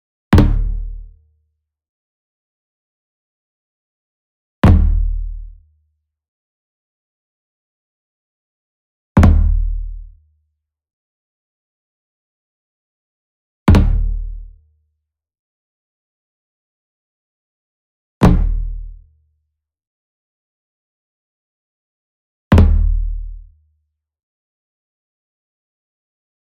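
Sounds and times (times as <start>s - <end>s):
Fontonfrom small drum flam with hard beater near: 0.3s - 0.8s, 4.6s - 5.1s, 9.2s - 9.8s, 13.7s - 14.3s, 18.2s - 18.7s, 22.5s - 23.0s.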